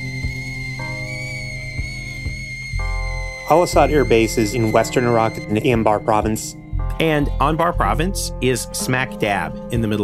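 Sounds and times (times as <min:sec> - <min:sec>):
kettle whistling: 0:00.0 - 0:06.8
speech: 0:03.5 - 0:10.0.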